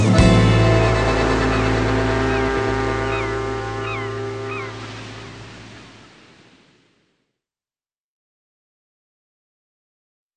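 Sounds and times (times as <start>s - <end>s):
ship horns blaring over water: 0.2s - 6.1s.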